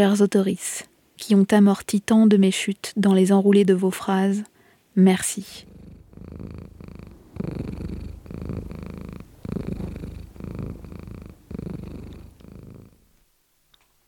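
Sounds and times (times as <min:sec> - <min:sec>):
speech: 0:00.0 - 0:05.7, 0:06.3 - 0:06.7
cat purring: 0:05.2 - 0:13.2.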